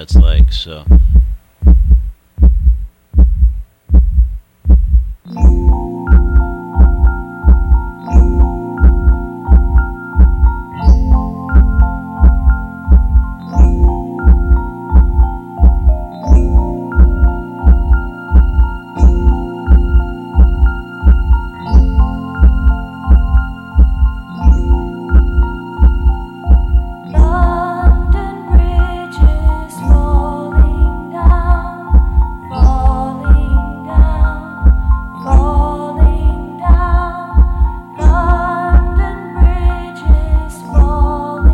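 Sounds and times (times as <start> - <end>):
speech: 0.0 - 1.0
steady deep heartbeat thumping: 0.0 - 41.5
soft sustained melodic lullaby tones: 5.3 - 41.5.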